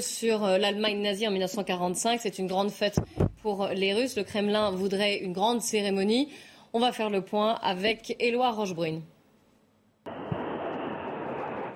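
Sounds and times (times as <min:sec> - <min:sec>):
speech: 0:00.0 - 0:09.1
fighter jet engines roaring overhead: 0:10.1 - 0:11.7.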